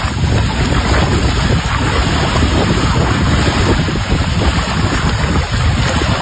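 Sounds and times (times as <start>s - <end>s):
water rushing through open dam spillway gates: 0.0s - 6.2s.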